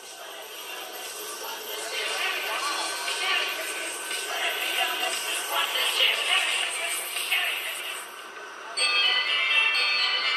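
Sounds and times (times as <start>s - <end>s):
faint indistinct voices: 0.0s - 10.3s
train bell ringing: 8.8s - 10.3s.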